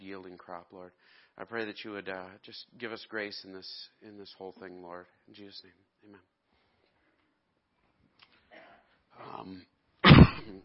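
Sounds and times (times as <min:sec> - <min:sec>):
speech: 0:00.1 - 0:06.3, 0:09.2 - 0:09.7
loud harsh cough into microphone: 0:10.0 - 0:10.6
soft throat clearing: 0:10.0 - 0:10.6.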